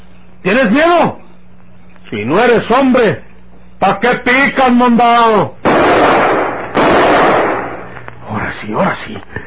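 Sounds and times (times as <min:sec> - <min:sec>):
speech: 0:00.4 - 0:01.2, 0:02.1 - 0:05.6, 0:08.6 - 0:09.4
pistol shots: 0:05.6 - 0:08.0.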